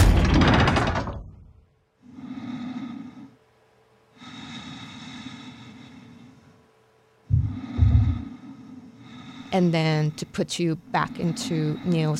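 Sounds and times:
ancient heavy door shutting with a rumbling boom: 0.0s - 1.4s
slow heavy breathing: 2.0s - 12.1s
speech: 9.5s - 12.1s.

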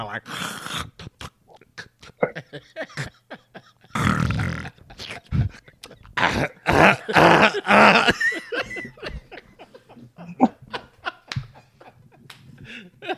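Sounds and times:
speech: 0.0s - 1.2s, 2.5s - 3.2s, 6.8s - 8.4s
voice imitating snoring: 0.0s - 2.0s, 4.0s - 5.4s
voice imitating throat clearing: 0.0s - 2.4s, 3.9s - 8.1s
laughter: 2.0s - 13.1s.

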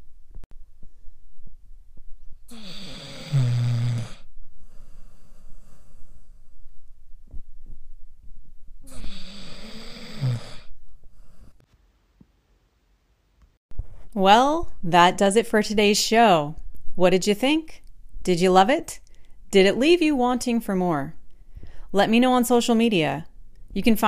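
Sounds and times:
sleeping puppy snoring: 2.5s - 6.2s, 8.8s - 11.6s
speech: 14.2s - 21.2s, 21.9s - 24.0s.

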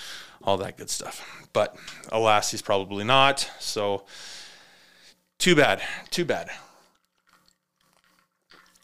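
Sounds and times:
speech: 0.4s - 4.4s, 5.4s - 6.7s
person sipping vodka from a glass: 6.0s - 8.8s.

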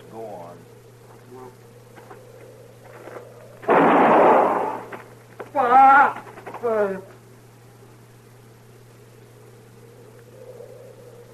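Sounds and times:
gunshot fired on private land: 3.6s - 5.0s.

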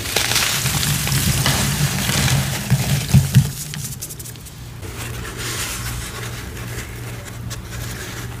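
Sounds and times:
crunchy cornstarch shapes crushed into water: 0.0s - 4.8s
steady low hum: 0.0s - 8.3s.

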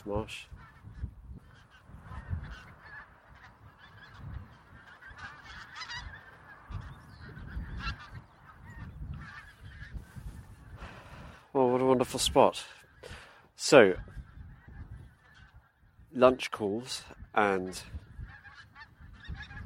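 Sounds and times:
speech: 0.0s - 0.6s, 11.6s - 12.8s, 13.6s - 14.1s, 16.2s - 18.0s
low gusty wind rumble: 0.0s - 16.2s, 17.0s - 19.6s
thousands of pink-footed geese honking across a marsh: 0.0s - 19.6s.

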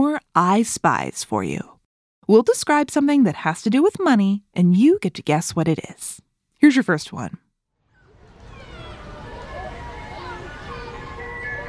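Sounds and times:
speech: 0.4s - 1.7s, 2.3s - 7.4s
street noise: 7.9s - 11.6s
ice cream truck music-box jingle: 8.4s - 11.6s.

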